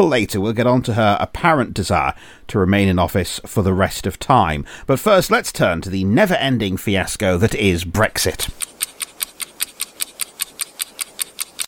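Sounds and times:
speech: 0:00.0 - 0:08.8
clock in a cupboard ticking: 0:08.5 - 0:11.6.

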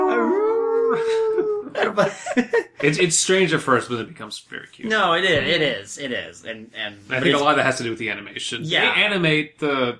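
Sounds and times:
person's voice mimicking a hound dog's howl: 0:00.0 - 0:01.8
laughter: 0:00.8 - 0:02.9
speech: 0:02.0 - 0:09.9.

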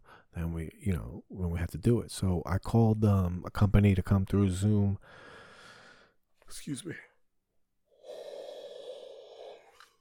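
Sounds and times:
speech: 0:00.4 - 0:05.2, 0:06.5 - 0:07.1
long drawn-out yawn with a breathy voiced tone: 0:08.0 - 0:09.9.

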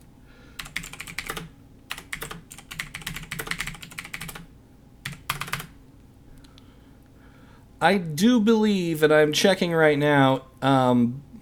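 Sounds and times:
clacky computer keyboard typing: 0:00.6 - 0:05.8
speech: 0:07.8 - 0:11.3.

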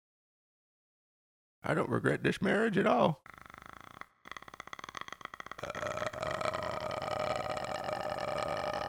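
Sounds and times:
speech: 0:01.6 - 0:03.4
creaky vocal fry voice without words: 0:03.2 - 0:08.8.

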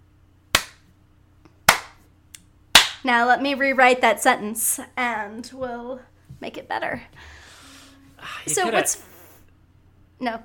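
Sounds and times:
slow hand clapping: 0:00.5 - 0:00.8, 0:01.7 - 0:02.0
speech: 0:03.0 - 0:07.4, 0:08.2 - 0:09.1, 0:10.2 - 0:10.4.

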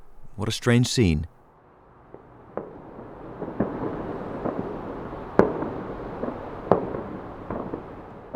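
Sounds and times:
speech: 0:00.4 - 0:01.4
New Year's Eve fireworks banging: 0:01.5 - 0:08.3
loud firework cracks: 0:02.0 - 0:08.3.

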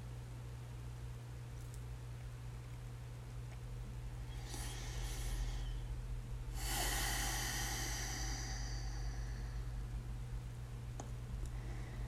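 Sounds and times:
steady low hum: 0:00.0 - 0:12.0
breathing in through the nose in a guided breathing exercise: 0:04.3 - 0:05.9, 0:06.6 - 0:09.8.

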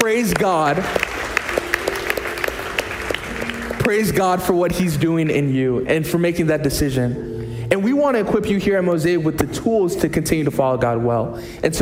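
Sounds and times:
speech: 0:00.0 - 0:01.2, 0:03.8 - 0:11.8
audience applause of many hands clapping: 0:00.0 - 0:04.3.

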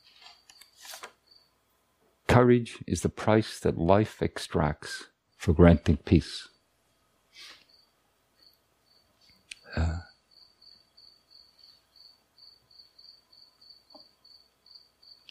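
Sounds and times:
crickets chirping at night: 0:00.4 - 0:01.6, 0:06.5 - 0:15.2
speech: 0:02.4 - 0:06.5.

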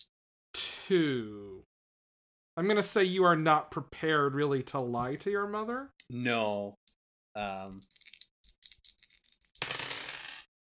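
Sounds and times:
speech: 0:00.9 - 0:01.7, 0:02.6 - 0:06.8, 0:07.4 - 0:08.0
two dice rolled clattering on a hard surface: 0:07.7 - 0:10.5.

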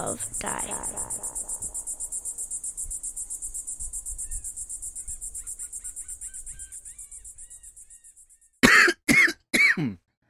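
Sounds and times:
speech: 0:00.0 - 0:01.2
steady pulsing insect chirp: 0:00.0 - 0:08.6
person choking on saliva and coughing: 0:08.6 - 0:10.0.

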